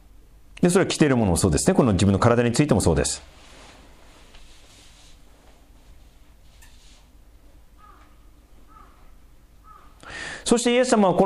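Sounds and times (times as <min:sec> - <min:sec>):
hiss: 0:00.0 - 0:11.2
speech: 0:00.6 - 0:03.5, 0:10.5 - 0:11.2
crow cawing: 0:07.8 - 0:10.1.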